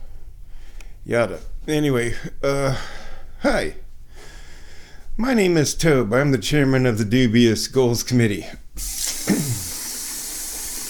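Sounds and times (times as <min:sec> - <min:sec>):
speech: 0:01.0 - 0:03.8, 0:05.2 - 0:09.2
water running from a kitchen sink tap: 0:08.8 - 0:10.8.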